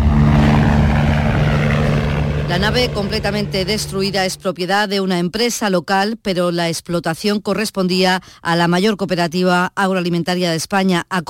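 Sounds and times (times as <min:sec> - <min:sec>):
evacuation helicopter engine and rotor roar: 0:00.0 - 0:04.4
speech: 0:02.5 - 0:11.2.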